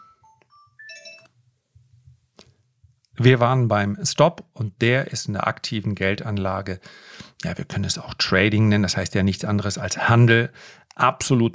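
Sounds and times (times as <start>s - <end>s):
telephone ringing with an electronic melody of beeping tones: 0.0s - 1.3s
speech: 3.2s - 11.5s.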